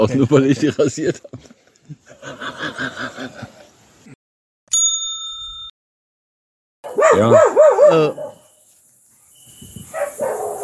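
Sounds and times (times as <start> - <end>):
speech: 0.0 - 3.4, 7.2 - 8.2
laughter: 0.0 - 3.8
dog barking: 6.8 - 8.4, 9.9 - 10.6.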